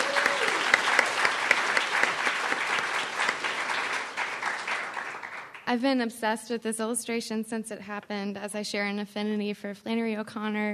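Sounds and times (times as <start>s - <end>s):
room full of people clapping: 0.0s - 6.1s
speech: 5.7s - 10.7s.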